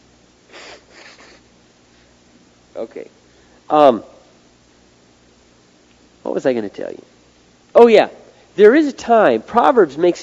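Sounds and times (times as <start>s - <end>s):
person blowing nose: 0.5s - 1.5s
speech: 2.8s - 4.1s, 6.3s - 10.2s.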